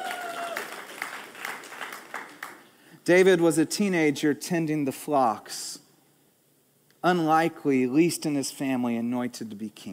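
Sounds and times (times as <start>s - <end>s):
audience clapping at a religious talk: 0.0s - 2.8s
speech: 3.1s - 5.8s, 7.0s - 9.9s.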